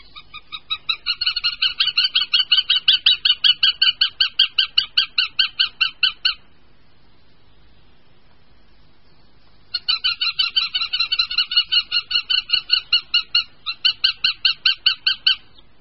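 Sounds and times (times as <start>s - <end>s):
northern goshawk ringing calls: 0.0s - 6.6s, 9.7s - 15.6s.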